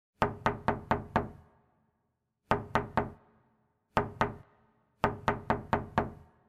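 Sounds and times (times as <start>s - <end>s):
knocking on a door: 0.2s - 1.4s, 2.5s - 3.2s, 4.0s - 4.4s, 5.0s - 6.3s.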